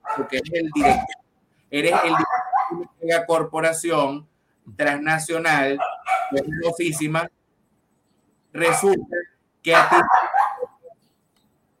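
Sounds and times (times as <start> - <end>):
dog barking: 0.0 - 1.2, 1.8 - 2.9, 5.8 - 6.6, 8.6 - 9.1, 9.7 - 11.0
speech: 0.2 - 7.4, 8.5 - 10.2.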